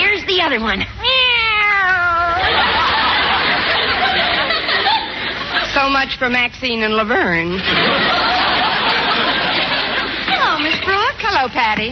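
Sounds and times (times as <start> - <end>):
speech: 0.5 - 1.1, 5.8 - 8.3, 10.6 - 11.8
person imitating a high wavering kitten meow: 1.0 - 2.5
crowd laughter and chatter: 2.0 - 6.2, 7.4 - 11.8.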